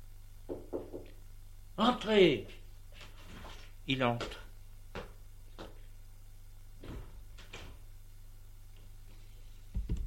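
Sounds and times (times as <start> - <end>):
faint steady hum: 0.0 - 10.0
soft knocking on a glazed door: 0.5 - 1.1
speech: 1.8 - 2.6, 3.9 - 4.4.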